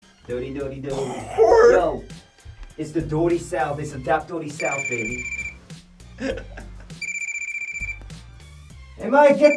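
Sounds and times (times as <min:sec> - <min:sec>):
speech: 0:00.3 - 0:02.2, 0:02.8 - 0:05.4, 0:06.2 - 0:06.6, 0:09.0 - 0:09.5
thumping hip-hop beat with heavy bass: 0:00.3 - 0:09.5
laughter: 0:00.8 - 0:02.2, 0:06.0 - 0:07.1
old-style telephone bell ringing in a buzzing trill: 0:04.6 - 0:05.6, 0:06.9 - 0:08.0, 0:09.3 - 0:09.5.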